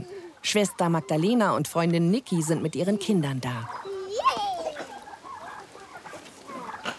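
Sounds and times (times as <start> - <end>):
chickens clucking: 0.0 - 6.9
speech: 0.4 - 3.8.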